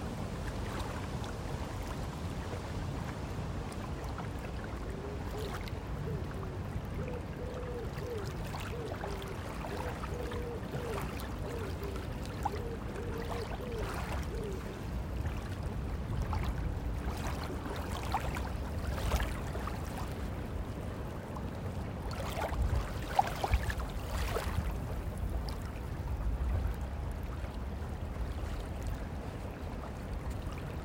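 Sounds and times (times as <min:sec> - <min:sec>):
steady low rumble of sea and wind on a beach in the morning: 0:00.0 - 0:30.8
scattered small knocks and splashes: 0:16.2 - 0:20.1, 0:22.1 - 0:24.7.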